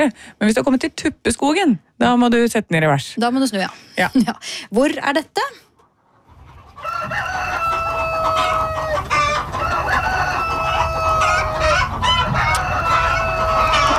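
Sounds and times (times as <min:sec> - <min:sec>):
speech: 0:00.0 - 0:05.6, 0:07.0 - 0:07.7
hens clucking in a barnyard: 0:05.7 - 0:13.9
rooster crowing: 0:06.8 - 0:13.9.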